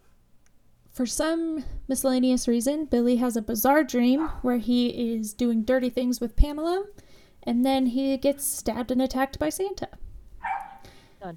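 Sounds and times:
speech: 0:01.0 - 0:10.0
dog barking: 0:10.4 - 0:10.9.

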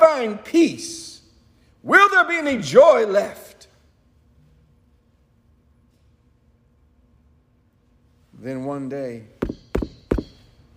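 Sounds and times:
speech: 0:00.2 - 0:01.0, 0:01.8 - 0:03.5, 0:08.4 - 0:09.4
knocking on a door: 0:09.4 - 0:10.4.

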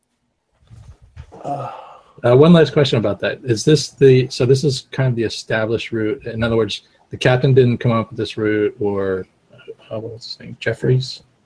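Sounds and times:
person imitating sea pigeon cooing call: 0:01.4 - 0:01.9
speech: 0:01.4 - 0:11.3.

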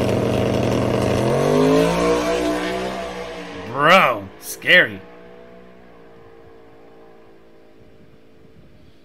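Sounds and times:
drag racing car engine roaring launching into a power wheelie: 0:00.0 - 0:08.2
speech: 0:04.7 - 0:05.1.

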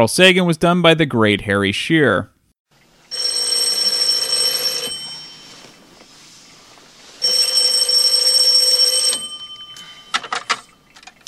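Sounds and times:
speech: 0:00.0 - 0:02.3
telephone ringing: 0:03.1 - 0:05.8, 0:07.2 - 0:11.0.

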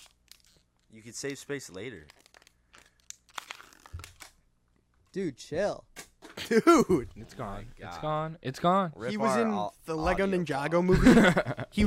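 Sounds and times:
plastic being crushed and crinkled near the microphone: 0:00.0 - 0:04.4
speech: 0:00.9 - 0:02.2, 0:05.2 - 0:11.8
laughter: 0:10.9 - 0:11.8.

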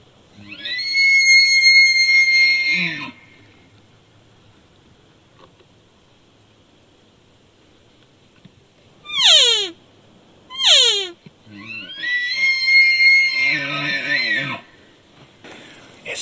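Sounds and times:
raspy high-pitched hunting call luring a bull: 0:00.4 - 0:03.6, 0:09.0 - 0:09.8, 0:10.5 - 0:14.7.

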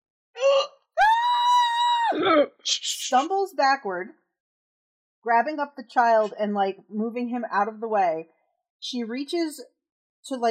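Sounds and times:
person imitating a woman shrieking in recognition: 0:00.4 - 0:02.5
speech: 0:02.2 - 0:04.2, 0:05.2 - 0:10.5.

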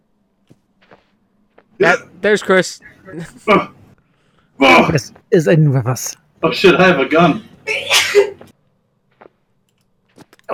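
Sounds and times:
speech: 0:01.8 - 0:03.8, 0:04.6 - 0:08.0
person sneezing in a bathroom: 0:07.7 - 0:08.4.

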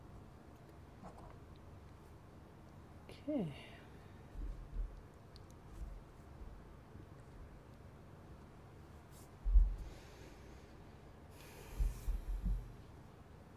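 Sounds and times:
speech: 0:03.2 - 0:03.7
quiet breathing in a hushed room: 0:09.7 - 0:12.8.

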